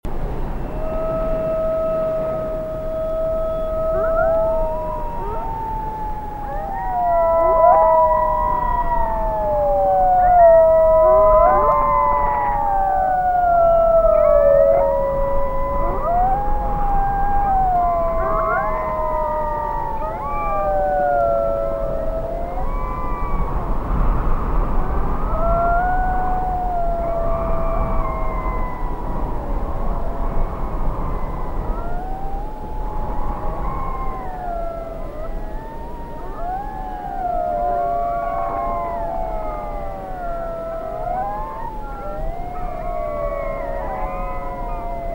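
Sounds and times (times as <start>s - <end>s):
wolves howling at night: 0.2s - 45.1s.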